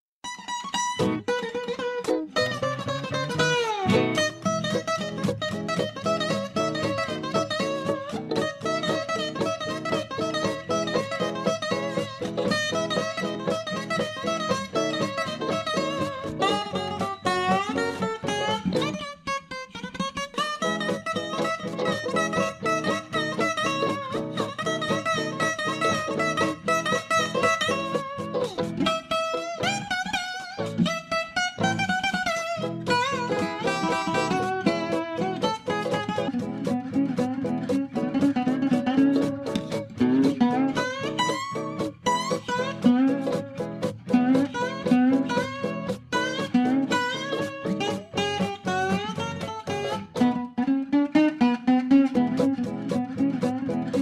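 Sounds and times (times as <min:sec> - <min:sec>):
ukulele melody: 0:00.2 - 0:54.0.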